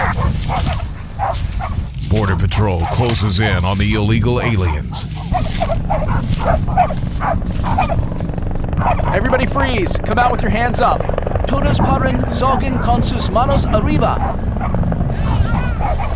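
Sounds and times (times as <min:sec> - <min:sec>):
several dogs barking and whining excitedly: 0:00.0 - 0:02.0, 0:02.6 - 0:03.8, 0:04.4 - 0:09.4, 0:12.8 - 0:16.1
speech: 0:02.2 - 0:08.2, 0:08.9 - 0:14.4.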